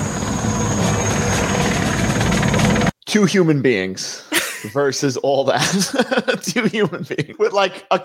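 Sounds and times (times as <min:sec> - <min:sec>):
helicopter rotor chopping with a high whine: 0:00.0 - 0:02.9
speech: 0:03.1 - 0:08.0
laughter: 0:04.3 - 0:04.8, 0:05.6 - 0:08.0.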